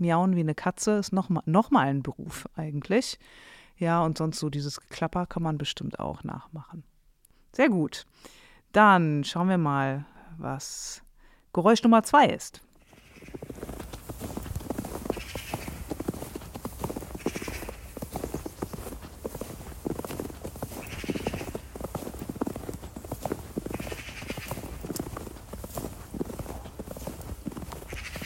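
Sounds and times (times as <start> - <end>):
speech: 0.0 - 6.9, 7.6 - 11.0, 11.6 - 12.6
footsteps crunching in snow: 12.8 - 28.2.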